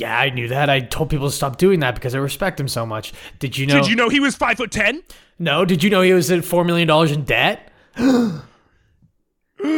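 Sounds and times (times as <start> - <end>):
speech: 0.0 - 8.5, 9.6 - 9.7
breathy gasp with a falling voiced pitch: 7.7 - 9.0, 9.6 - 9.7.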